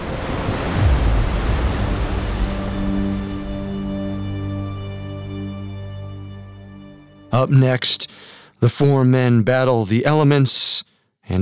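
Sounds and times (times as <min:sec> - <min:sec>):
massive ocean wave crashing down on ship: 0:00.0 - 0:06.3
low sustained droning tone: 0:00.6 - 0:07.3
speech: 0:07.4 - 0:11.4.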